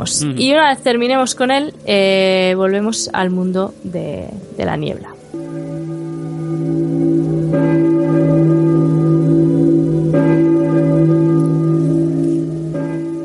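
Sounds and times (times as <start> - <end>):
speech: 0.0 - 5.2
church bells ringing: 4.8 - 13.2.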